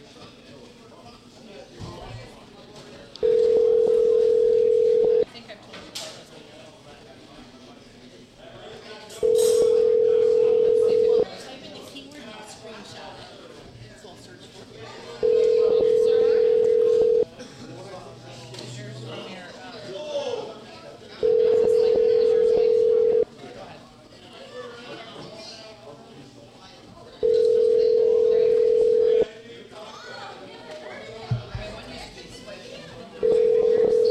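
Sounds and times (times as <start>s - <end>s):
faint voices and murmur: 0.0s - 34.0s
outgoing phone call ringback tone buzzing: 3.2s - 5.3s, 9.2s - 11.2s, 15.2s - 17.2s, 21.2s - 23.2s, 27.2s - 29.3s, 33.2s - 34.0s.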